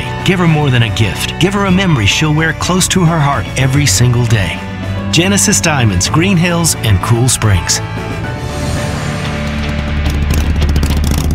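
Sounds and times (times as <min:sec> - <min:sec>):
speech: 0:00.2 - 0:08.3
motorcycle engine revving on Tennessee's roads: 0:07.8 - 0:11.3.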